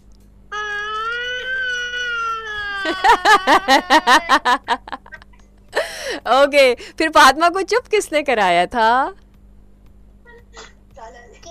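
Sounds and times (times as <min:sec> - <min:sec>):
child imitating a girl crying: 0:00.5 - 0:04.7
laughter: 0:02.8 - 0:05.3
speech: 0:02.9 - 0:05.0, 0:05.7 - 0:09.2.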